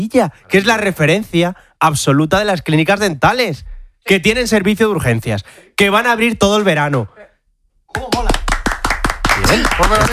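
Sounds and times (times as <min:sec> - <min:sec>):
speech: 0:00.0 - 0:07.2, 0:09.5 - 0:10.1
audience applause: 0:08.1 - 0:10.1.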